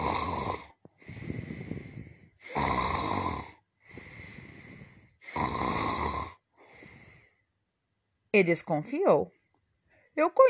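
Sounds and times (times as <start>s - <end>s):
loud snoring: 0.0s - 7.1s
speech: 8.4s - 9.4s, 10.2s - 10.4s.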